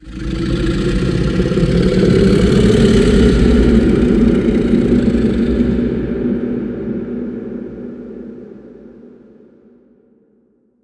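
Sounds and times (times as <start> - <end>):
titan groaning: 0.0 - 6.6.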